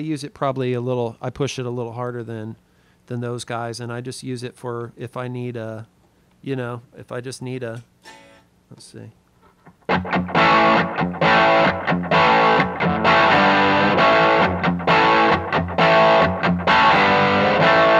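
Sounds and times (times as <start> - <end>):
speech: 0.0 - 9.2, 9.9 - 12.0
electric guitar through a pedal with light crunchy distortion playing ringing chords: 9.8 - 17.9.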